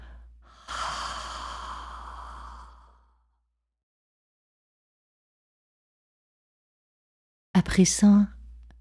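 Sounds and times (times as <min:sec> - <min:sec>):
short quiet intake of breath during a guided breathing exercise: 0:00.0 - 0:03.1
long airy exhale during a guided breathing exercise: 0:00.2 - 0:03.2
speech: 0:07.6 - 0:08.4.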